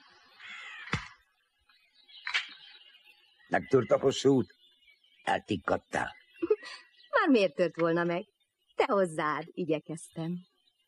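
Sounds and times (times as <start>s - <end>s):
raven cawing: 0.4s - 1.2s
speech: 3.5s - 4.6s, 5.3s - 10.5s.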